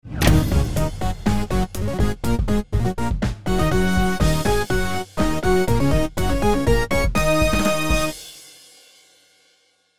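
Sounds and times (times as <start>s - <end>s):
win music: 0.2s - 8.2s.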